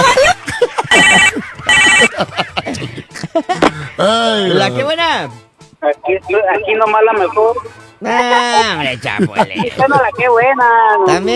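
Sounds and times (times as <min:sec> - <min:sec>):
laughter: 0:00.0 - 0:05.4, 0:06.3 - 0:11.3
telephone ringing in harsh electronic bursts: 0:00.9 - 0:02.1, 0:06.2 - 0:07.7
speech: 0:04.0 - 0:11.3.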